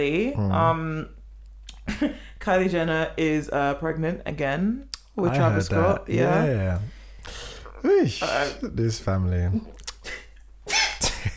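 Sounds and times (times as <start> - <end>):
speech: 0.0 - 1.2, 2.0 - 9.8
explosive sneeze merging into a cough: 10.1 - 11.2.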